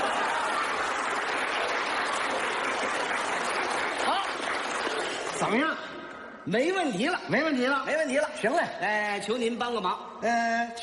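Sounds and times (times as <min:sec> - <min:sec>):
large audience applause: 0:00.0 - 0:05.7
speech: 0:05.5 - 0:10.8.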